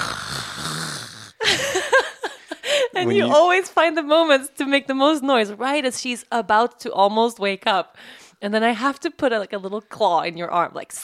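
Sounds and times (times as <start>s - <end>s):
voice imitating the yawn of a tall heavy man: 0.0s - 1.4s
speech: 3.0s - 11.0s.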